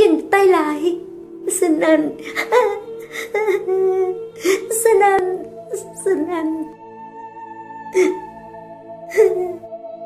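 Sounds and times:
speech: 0:00.4 - 0:06.8, 0:07.9 - 0:08.2, 0:09.1 - 0:09.7
woman crying in pain with strained gasping sobs: 0:02.2 - 0:04.8, 0:08.0 - 0:08.3, 0:09.1 - 0:09.7.

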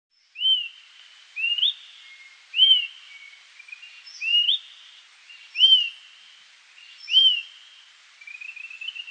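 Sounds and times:
bird song of clear whistled rising slurs: 0:00.1 - 0:00.8, 0:01.4 - 0:06.2, 0:06.8 - 0:09.0
faint background hiss: 0:00.1 - 0:09.0.

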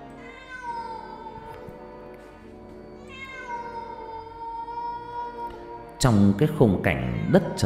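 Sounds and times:
cat yowling eerily in bushes: 0:00.1 - 0:01.6, 0:03.0 - 0:05.8
speech: 0:06.0 - 0:07.6.

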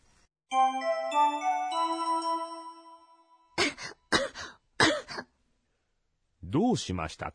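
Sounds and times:
bright chiming melody: 0:00.5 - 0:03.7
person with a cold coughing: 0:03.6 - 0:05.3
speech: 0:06.5 - 0:07.3.

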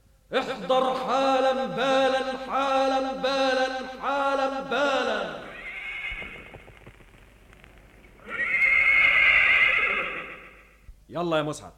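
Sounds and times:
speech: 0:00.3 - 0:05.4, 0:11.1 - 0:11.7
horse neighing: 0:05.4 - 0:06.6, 0:08.2 - 0:10.8.

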